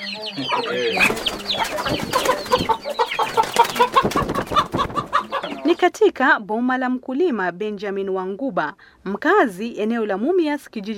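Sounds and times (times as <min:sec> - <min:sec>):
chickens clucking and squawking on a poultry farm in Kakamega County, Kenya: 0:00.0 - 0:06.2
speech: 0:00.2 - 0:03.9, 0:05.8 - 0:10.9.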